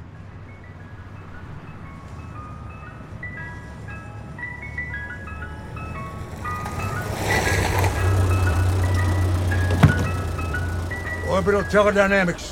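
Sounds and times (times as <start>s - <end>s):
ice cream truck steady low engine rumble: 0.0s - 12.4s
ice cream truck tinkling jingle: 0.0s - 12.4s
sharp thunk: 9.7s - 10.3s
speech: 11.4s - 12.4s.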